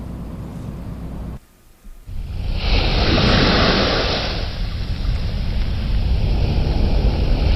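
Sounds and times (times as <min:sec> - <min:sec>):
deep constant ship-like rumble: 0:00.0 - 0:07.5
sea water rushing and washing: 0:02.1 - 0:07.5.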